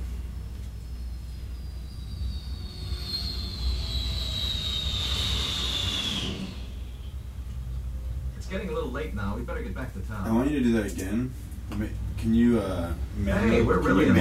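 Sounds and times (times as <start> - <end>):
jet bomber roaring past: 2.0 - 8.2
speech: 8.9 - 14.1.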